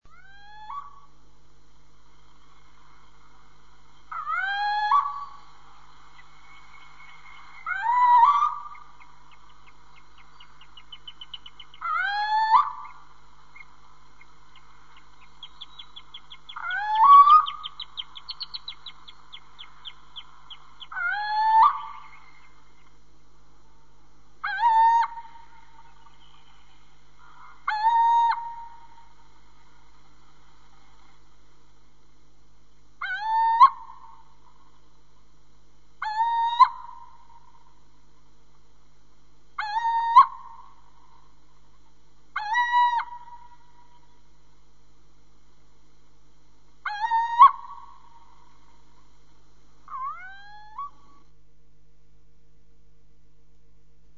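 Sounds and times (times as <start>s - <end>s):
Steinkauz little owl calling: 0.1s - 1.3s, 2.4s - 23.0s, 23.7s - 30.0s, 33.0s - 34.9s, 36.0s - 38.1s, 39.6s - 44.3s, 46.8s - 49.1s, 49.7s - 51.4s.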